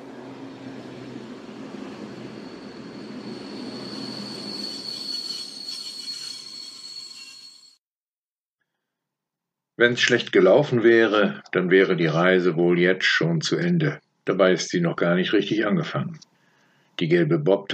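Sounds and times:
train arriving at station rumbling: 0.0s - 7.2s
train wheels squealing: 0.0s - 7.8s
speech: 9.8s - 16.3s, 17.0s - 17.7s.

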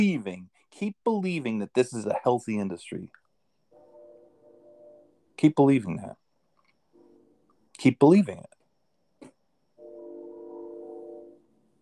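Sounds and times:
speech: 0.0s - 3.2s, 5.4s - 6.2s, 7.8s - 8.6s
train horn blast: 9.8s - 11.4s.

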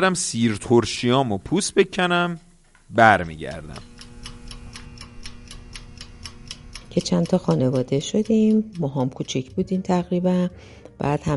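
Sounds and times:
speech: 0.0s - 3.9s, 6.9s - 11.3s
low steady hum: 0.0s - 9.5s
wound-up mechanical gas stove timer ticking: 2.9s - 10.5s.

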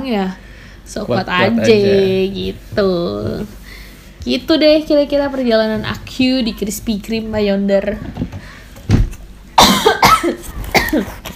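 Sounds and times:
speech: 0.0s - 3.6s, 4.2s - 8.3s
person coughing harshly: 9.6s - 11.2s.

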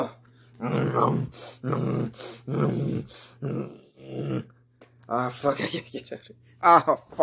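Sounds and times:
speech: 0.0s - 7.2s
bears growling: 0.6s - 4.5s.

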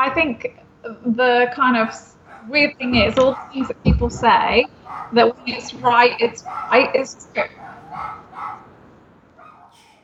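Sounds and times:
speech: 0.0s - 8.2s
faint hum: 0.0s - 10.0s
dogs barking: 1.6s - 10.0s.

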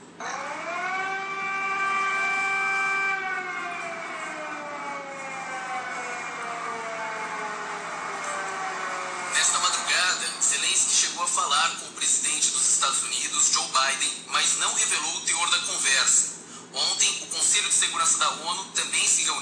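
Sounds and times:
air raid warning siren wailing: 0.0s - 11.5s
speech: 10.6s - 19.4s.

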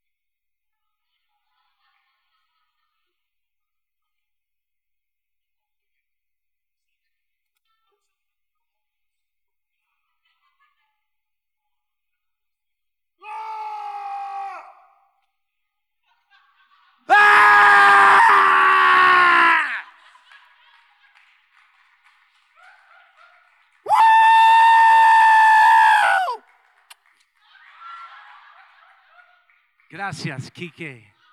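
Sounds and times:
man screaming into another person's face: 17.1s - 19.8s, 23.9s - 26.4s
shorter softer vocal cry: 17.1s - 19.8s, 23.9s - 26.4s
laughter: 27.5s - 31.1s
speech: 30.0s - 31.1s.

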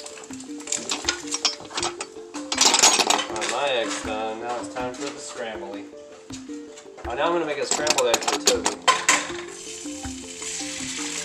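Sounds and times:
silverware and dishes clinking: 0.0s - 5.9s, 7.0s - 9.5s
music: 0.0s - 11.2s
speech: 3.6s - 6.1s, 7.1s - 9.0s.

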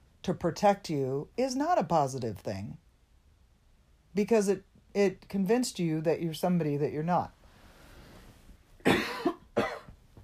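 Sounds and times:
speech: 0.2s - 2.8s, 4.2s - 7.4s
person coughing: 8.8s - 10.0s.

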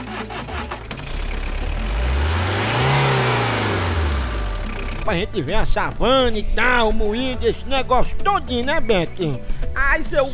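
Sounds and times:
car engine revving on a safari drive in the savanna: 0.0s - 5.5s
speech: 5.1s - 10.3s.

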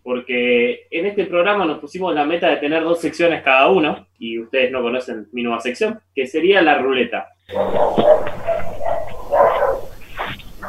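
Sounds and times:
speech: 0.2s - 8.7s
several dogs barking and yipping: 7.5s - 10.6s.

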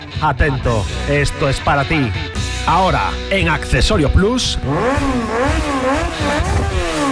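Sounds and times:
speech: 0.2s - 6.7s
motorcycle engine revving: 4.4s - 7.0s.

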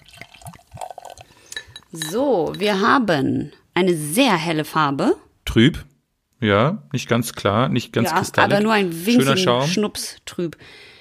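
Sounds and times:
beer glugging and splashing as poured into a glass: 0.0s - 1.9s
speech: 1.9s - 10.9s.

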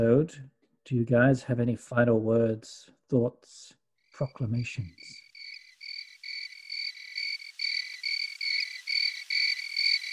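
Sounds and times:
speech: 0.0s - 5.2s
cricket chirping: 4.3s - 10.1s.

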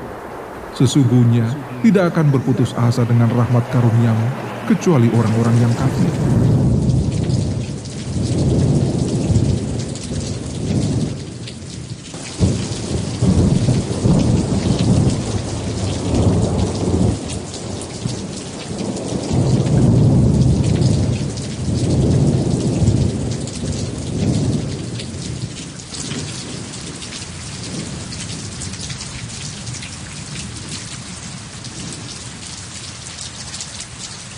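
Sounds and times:
deep rolls of thunder: 0.0s - 11.5s, 12.1s - 25.4s
heavy rain: 0.0s - 34.3s
speech: 0.8s - 6.5s.

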